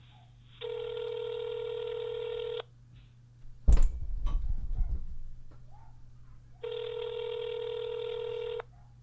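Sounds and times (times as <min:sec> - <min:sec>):
low constant hum: 0:00.0 - 0:09.0
telephone line electronic beeps of an outgoing phone call: 0:00.6 - 0:02.6, 0:06.6 - 0:08.6.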